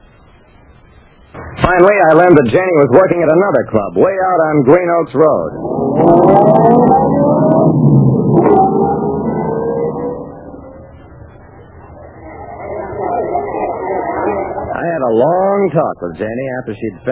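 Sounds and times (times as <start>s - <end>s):
speech: 1.6s - 8.7s, 15.1s - 17.1s
car engine revving as the car pulls away: 5.2s - 15.5s.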